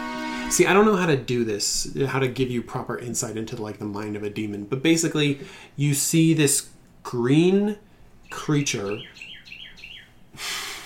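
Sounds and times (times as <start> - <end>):
speech: 0.5 - 9.2
bird chirping at night outside a window: 8.2 - 10.3
breathy hiss: 10.4 - 10.8.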